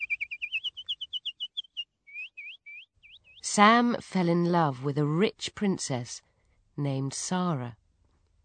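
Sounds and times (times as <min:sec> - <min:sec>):
nightingale singing: 0:00.0 - 0:03.5
speech: 0:03.5 - 0:07.8.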